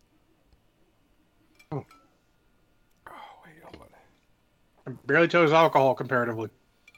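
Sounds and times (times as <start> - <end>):
drinking glasses clinking in a toast: 1.5 - 2.2
speech: 1.7 - 2.0, 4.9 - 6.6.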